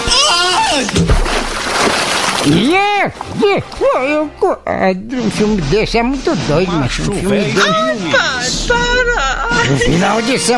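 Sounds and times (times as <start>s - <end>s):
voice crying out: 0.0s - 1.0s
body plunging into a pond: 0.7s - 3.4s
churning sloshing pond water: 0.7s - 3.8s
speech: 2.4s - 10.5s.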